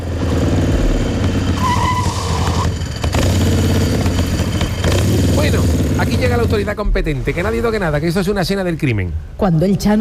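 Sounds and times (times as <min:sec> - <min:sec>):
motorbike engine roaring while speeding to La Caleta in Cádiz: 0:00.0 - 0:07.5
motorbike tire squealing in a skid: 0:00.2 - 0:06.6
speech: 0:06.0 - 0:10.0.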